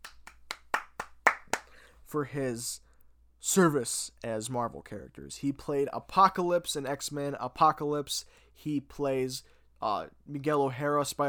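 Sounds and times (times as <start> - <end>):
single person applauding with sharp hand claps: 0.0 - 1.8
speech: 2.1 - 11.2.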